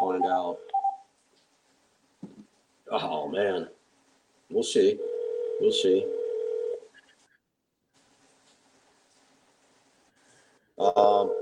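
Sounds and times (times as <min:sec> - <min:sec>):
speech: 0:00.2 - 0:00.8, 0:02.9 - 0:03.8, 0:04.5 - 0:06.2, 0:10.9 - 0:11.4
phone dial tones: 0:05.0 - 0:06.8.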